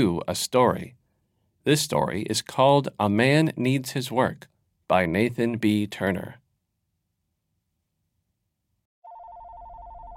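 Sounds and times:
speech: 0.0s - 1.0s, 1.6s - 6.4s
office desk telephone ringing with a bell trill: 9.0s - 10.1s.

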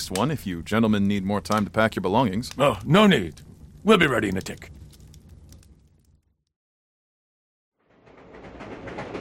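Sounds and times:
speech: 0.0s - 4.8s
train rumbling on rails: 7.8s - 9.1s.

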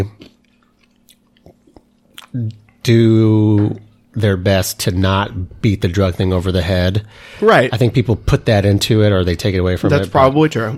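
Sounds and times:
speech: 0.0s - 0.2s, 2.3s - 10.7s
crunching of ice being chewed: 0.1s - 2.8s.

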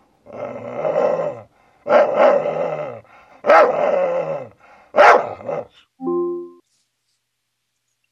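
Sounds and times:
dog barking and growling played by smart speaker: 0.2s - 5.8s
brief electronic chime: 6.0s - 6.6s.

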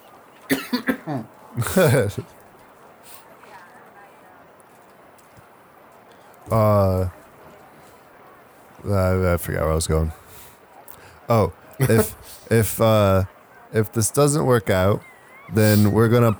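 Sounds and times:
laughter: 0.0s - 2.4s, 11.3s - 16.3s
man coughing: 0.5s - 2.2s, 11.8s - 12.2s, 15.5s - 16.3s
speech: 0.8s - 2.4s, 6.5s - 7.2s, 8.8s - 10.2s, 11.3s - 16.3s.

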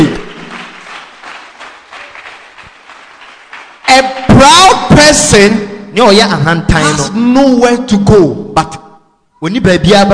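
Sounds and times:
audience clapping: 0.0s - 4.6s
speech: 5.1s - 8.8s, 9.4s - 10.1s.

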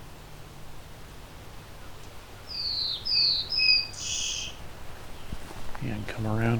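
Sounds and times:
faint steady hiss: 0.0s - 6.5s
bird singing while catching bugs in flight: 0.9s - 4.6s
speech: 3.2s - 3.6s, 5.8s - 6.5s.

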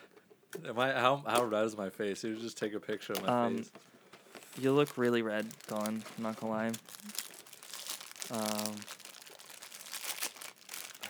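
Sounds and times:
speech: 0.6s - 4.0s, 4.6s - 7.2s, 8.3s - 9.0s
plastic saltine cracker wrapper being crinkled and handled: 3.1s - 11.0s.

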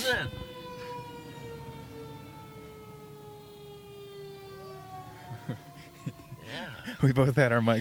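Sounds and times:
fire truck sirens wailing as trucks pass: 0.0s - 7.8s
speech: 0.1s - 0.4s, 6.6s - 7.8s.

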